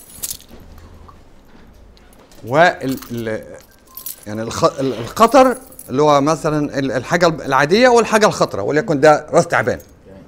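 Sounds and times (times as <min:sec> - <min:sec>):
keys jangling: 0:00.0 - 0:06.4
low hum: 0:00.0 - 0:10.2
speech: 0:02.4 - 0:09.9.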